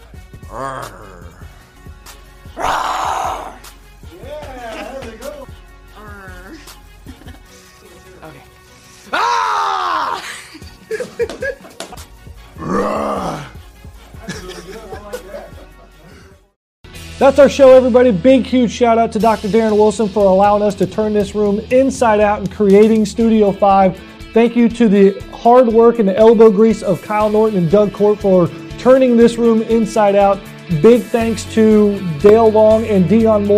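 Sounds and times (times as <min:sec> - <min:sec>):
people imitating a grizzly bear roar: 0:00.4 - 0:01.6, 0:02.6 - 0:03.7, 0:06.0 - 0:06.8, 0:09.1 - 0:10.4, 0:12.6 - 0:13.6
growling and groaning voices: 0:00.4 - 0:01.8, 0:02.5 - 0:03.7, 0:04.3 - 0:06.9, 0:12.5 - 0:13.7
speech: 0:00.5 - 0:01.2, 0:17.2 - 0:33.5
laughter: 0:04.2 - 0:05.5, 0:06.5 - 0:08.5, 0:10.0 - 0:12.0, 0:14.2 - 0:16.5.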